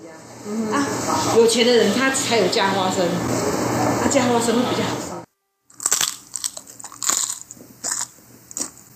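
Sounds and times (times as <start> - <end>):
speech: 1.3 - 5.2
crunching crisp sweet puffed rice with peanuts: 5.7 - 8.8.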